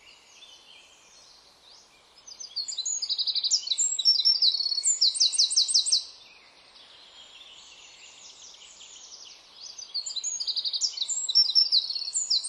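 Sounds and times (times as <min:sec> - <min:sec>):
Eurasian wren Troglodytes troglodytes singing: 0:01.8 - 0:06.2, 0:07.2 - 0:12.4.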